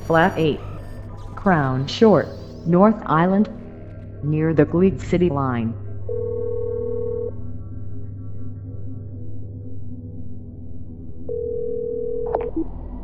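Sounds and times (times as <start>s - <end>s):
low hum: 0.0s - 13.0s
speech: 0.1s - 0.7s, 1.4s - 3.6s, 4.2s - 5.8s
telephone ringing tone through a handset: 6.1s - 7.3s, 11.3s - 12.5s.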